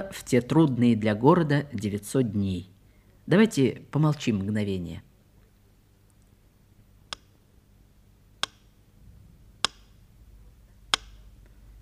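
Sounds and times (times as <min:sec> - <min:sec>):
speech: 0:00.0 - 0:02.7, 0:03.3 - 0:05.1
faint low hum: 0:00.0 - 0:11.8
metronome ticking slowly: 0:09.6 - 0:10.0, 0:10.9 - 0:11.3.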